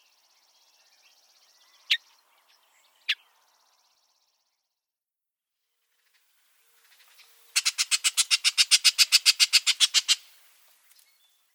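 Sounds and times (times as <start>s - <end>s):
Bullock's oriole dry harsh rattle call: 7.5s - 10.4s.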